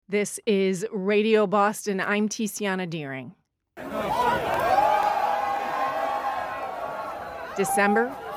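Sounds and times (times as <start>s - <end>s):
speech: 0.1s - 4.6s, 7.6s - 8.3s
large crowd cheering and whooping as first train arrives at station: 3.8s - 8.3s.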